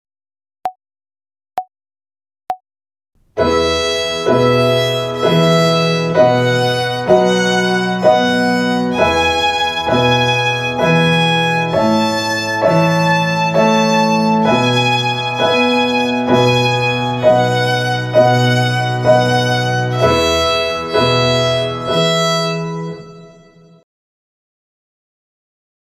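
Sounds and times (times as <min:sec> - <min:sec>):
violin playing an exercise on the E string in triple time: 0:03.4 - 0:23.8.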